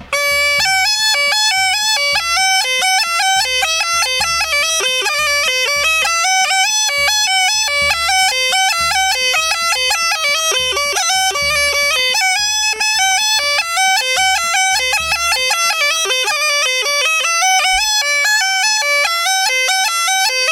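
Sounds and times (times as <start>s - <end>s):
small gajda bagpipe playing Chetvorno line: 0.0s - 20.5s.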